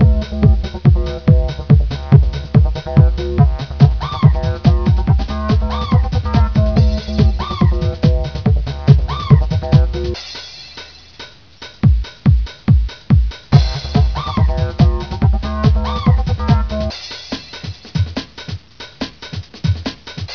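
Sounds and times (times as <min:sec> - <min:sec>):
disco music: 0:00.0 - 0:20.3.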